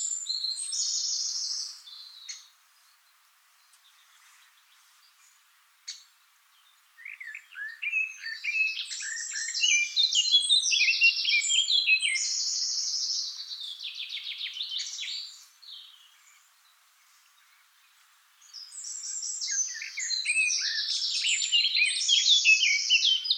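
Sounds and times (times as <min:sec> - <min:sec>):
Eurasian blackcap Sylvia atricapilla song: 0:00.0 - 0:23.3.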